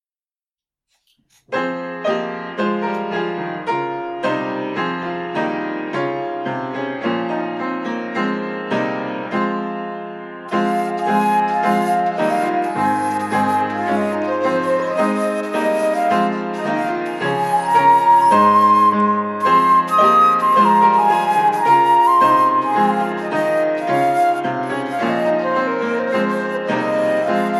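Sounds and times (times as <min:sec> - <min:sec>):
piano: 0:00.9 - 0:27.5
flute: 0:10.4 - 0:27.5.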